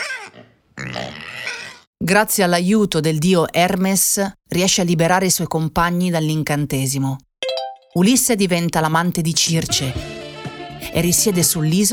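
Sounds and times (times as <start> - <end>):
pigs grunting and oinking: 0.0 - 1.9
speech: 2.1 - 7.3, 7.9 - 10.1, 10.8 - 11.9.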